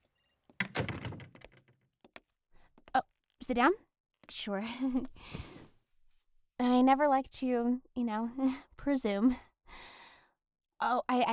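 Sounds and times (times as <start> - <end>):
office door being pushed shut: 0.6 - 1.6
speech: 3.5 - 5.6, 6.6 - 10.0, 10.8 - 11.3.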